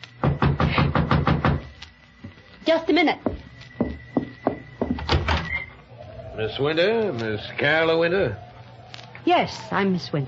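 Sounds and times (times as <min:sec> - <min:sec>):
knocking on a door: 0:00.2 - 0:01.7, 0:03.2 - 0:05.4
speech: 0:02.7 - 0:03.3, 0:06.4 - 0:08.5, 0:09.2 - 0:10.2.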